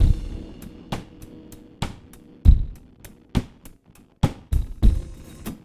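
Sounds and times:
lo-fi sample with sample reduction: 0.0s - 5.4s.

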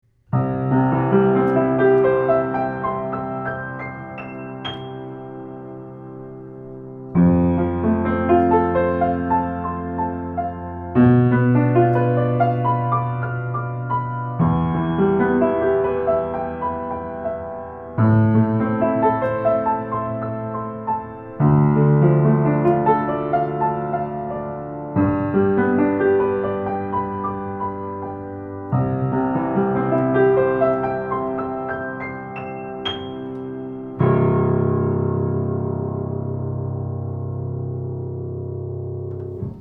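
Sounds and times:
160cm piano playing: 0.1s - 39.5s.

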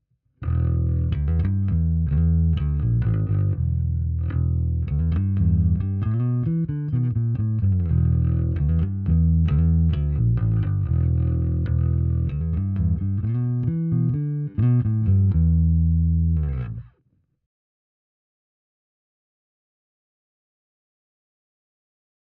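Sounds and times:
bass amplifier with four ten-inch speakers recorded with a dynamic microphone: 0.4s - 17.0s.

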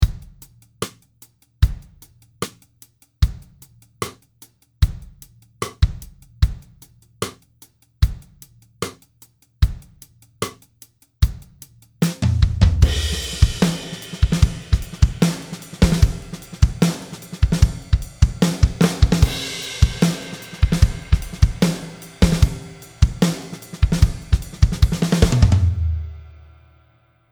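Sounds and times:
snare drum with ambience reverb: 0.0s - 1.0s, 4.8s - 7.4s, 11.2s - 26.5s.

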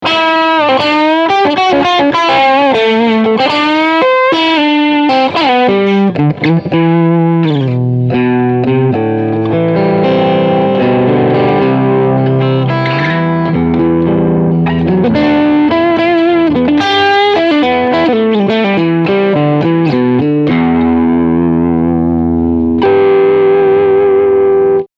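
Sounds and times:
crunchy distorted guitar: 0.0s - 24.9s.

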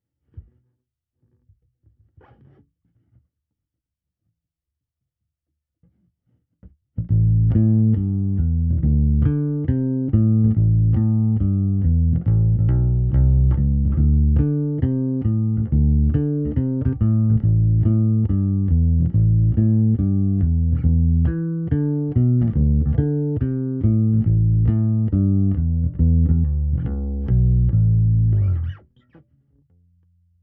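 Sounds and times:
clean blues bass guitar through SVT amp: 7.0s - 30.4s.

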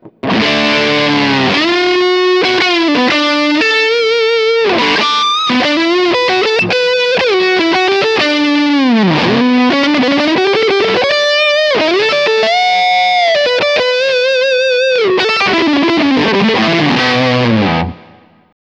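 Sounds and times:
fuzz-toned electric guitar on neck single-coil pickup with sustain: 0.0s - 18.5s.

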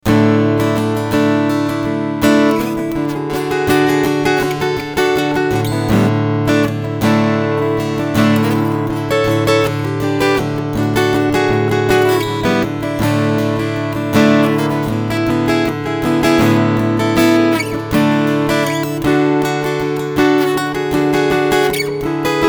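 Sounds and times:
guitar strumming through a Fishman EQ: 0.0s - 22.4s.

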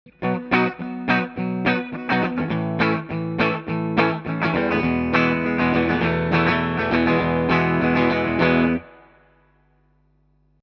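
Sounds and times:
clean electric guitar chords recorded with cardioid microphone: 0.1s - 9.2s.

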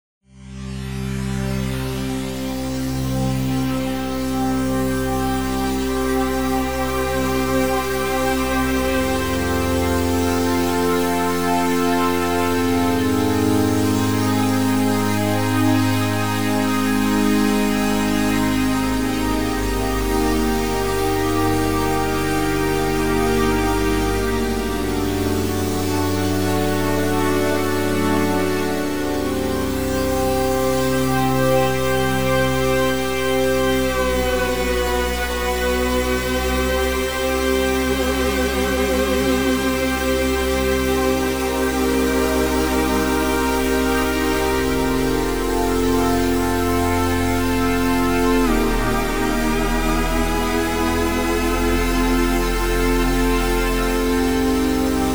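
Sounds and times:
high bright synth pad: 0.8s - 55.1s.

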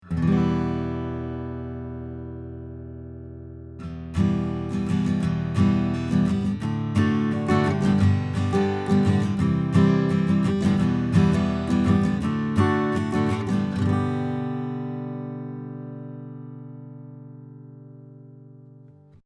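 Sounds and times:
guitar strumming recorded with a cardioid microphone: 0.0s - 19.2s.

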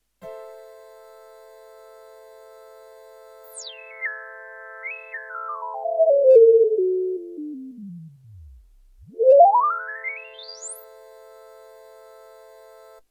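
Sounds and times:
synthesizer 24dB filter resonance tweaked in realtime: 3.4s - 13.0s.

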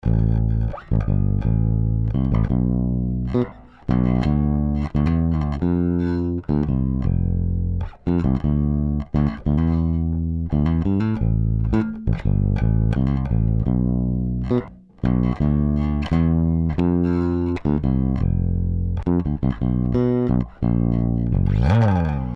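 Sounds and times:
bass through Twin Tube: 0.0s - 22.3s.

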